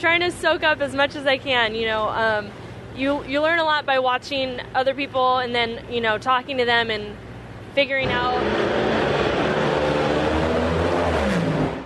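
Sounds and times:
speech: 0.0 - 8.8
funny car drag racer engine roaring down the track: 8.0 - 11.8.

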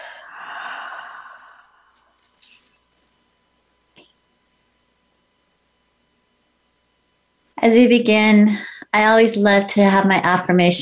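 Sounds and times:
deep breath drawn in and released during a guided relaxation exercise: 0.0 - 2.6
speech: 7.6 - 10.7.

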